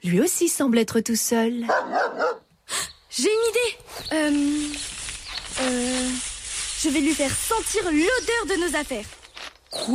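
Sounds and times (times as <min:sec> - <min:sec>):
speech: 0:00.0 - 0:04.9, 0:05.6 - 0:09.9
dog barking: 0:01.7 - 0:02.5.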